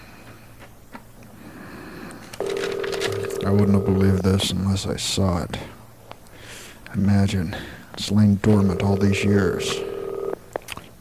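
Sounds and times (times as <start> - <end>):
low hum: 0.0 - 10.9
telephone ring tone: 2.4 - 4.2, 8.5 - 10.4
speech: 3.4 - 5.8, 6.9 - 9.9.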